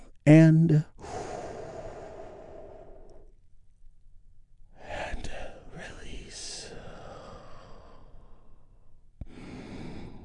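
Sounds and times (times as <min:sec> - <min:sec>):
calm voice talking: 0:00.0 - 0:00.9, 0:04.8 - 0:06.8
deep breath drawn in during a guided meditation: 0:01.0 - 0:03.3, 0:06.7 - 0:08.7, 0:09.3 - 0:10.2.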